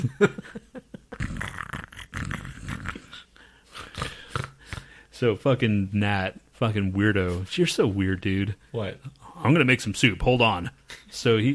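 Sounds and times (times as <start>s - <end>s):
speech: 0.1s - 0.4s, 5.2s - 11.5s
people imitating snoring: 1.1s - 5.1s.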